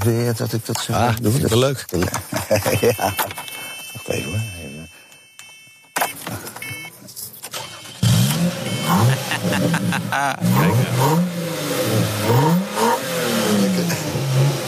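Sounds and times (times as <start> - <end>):
speech: 0.0 - 3.5, 4.1 - 4.7, 9.6 - 11.3
laughter: 2.0 - 3.5, 8.8 - 11.2
car engine cranking, starting and revving: 7.4 - 14.6.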